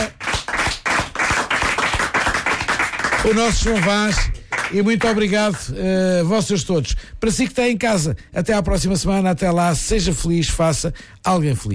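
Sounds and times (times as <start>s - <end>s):
audience applause: 0.0s - 5.3s
speech: 3.2s - 11.7s.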